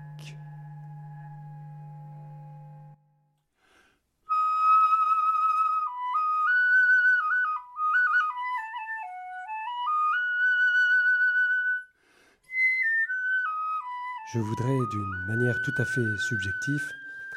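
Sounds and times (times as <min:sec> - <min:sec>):
bright whistle-like harmonic tone melody: 0:00.0 - 0:03.2, 0:04.3 - 0:17.3
steady low humming tone rich in overtones: 0:00.0 - 0:03.3
speech: 0:14.3 - 0:17.0.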